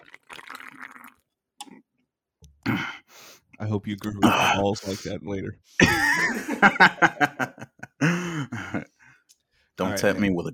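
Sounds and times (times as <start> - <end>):
wet slurping sip of sour beer: 0.0 - 1.8
gulp: 0.0 - 1.9, 3.9 - 5.0
speech: 3.6 - 7.4, 10.0 - 10.5
laughter: 5.8 - 8.9.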